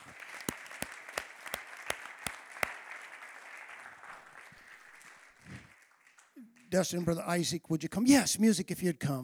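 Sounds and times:
audience applause: 0.0 - 6.3
audience clapping hands in a steady rhythm: 0.0 - 6.6
speech: 6.7 - 9.2.

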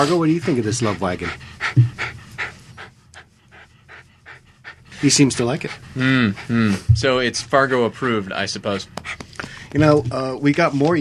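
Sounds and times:
speech: 0.0 - 2.0, 5.0 - 10.9
dog panting in a studio: 0.0 - 10.0.

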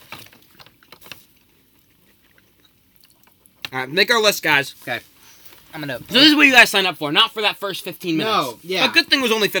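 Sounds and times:
person crunching chips: 0.0 - 3.7
speech: 3.7 - 5.1, 5.7 - 9.5.

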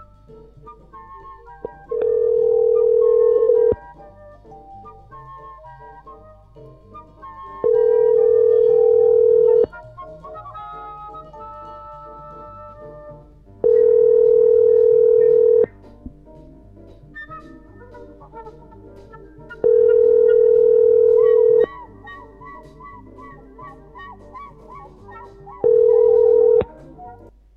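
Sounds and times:
faint music: 0.0 - 27.5
electronic ringback tone of a phone call: 1.9 - 3.8, 7.6 - 9.7, 13.6 - 15.7, 19.6 - 21.7, 25.6 - 26.7.

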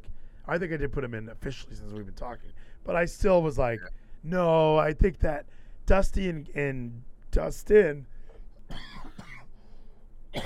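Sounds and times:
speech: 0.5 - 8.1, 8.7 - 9.1
harsh throaty coughing: 8.7 - 9.5.

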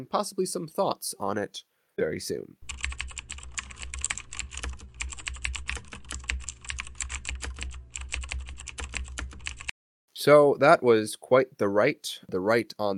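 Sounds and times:
speech: 0.0 - 2.8, 10.2 - 12.9
typing on computer keyboard keys: 2.6 - 9.7.

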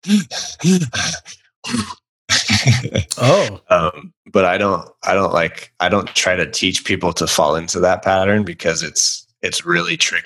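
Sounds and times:
speech: 0.0 - 2.0, 2.6 - 10.2
voice imitating a rower's huffing breathing at competitive rate: 3.1 - 3.6.

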